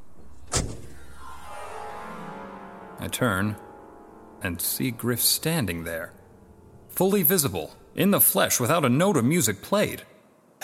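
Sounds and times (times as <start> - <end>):
car door shutting: 0.4 - 1.0
speech: 3.0 - 3.6, 4.4 - 6.2, 6.9 - 10.6.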